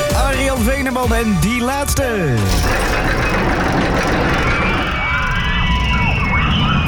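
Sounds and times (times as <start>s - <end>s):
speech: 0.6s - 4.3s
figure-eight roller coaster racing past: 2.5s - 6.8s.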